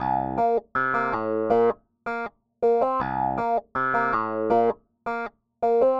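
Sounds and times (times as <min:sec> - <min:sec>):
bass: 0:00.0 - 0:01.8, 0:02.8 - 0:04.8.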